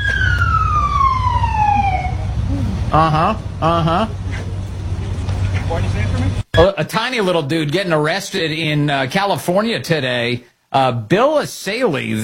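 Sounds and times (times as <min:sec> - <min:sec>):
police car siren: 0:00.0 - 0:03.1
steady low engine rumble: 0:00.1 - 0:06.5
speech: 0:02.9 - 0:04.2, 0:05.7 - 0:12.2.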